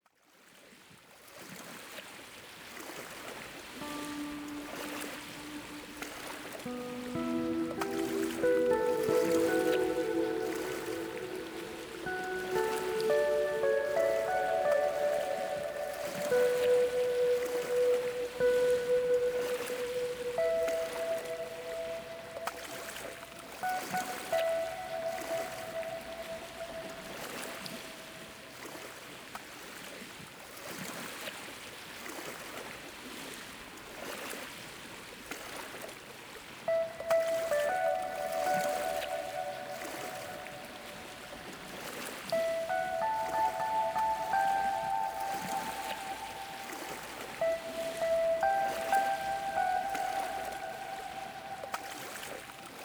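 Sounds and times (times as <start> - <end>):
ocean waves: 2.7 - 29.6, 36.7 - 52.8
relaxing yoga meditation music: 3.8 - 28.9, 36.7 - 52.8.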